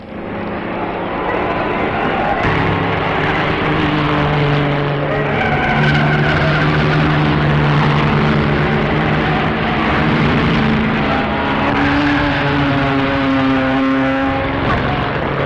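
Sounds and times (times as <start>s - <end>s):
racing cars driving past on a circuit: 0.0s - 15.4s.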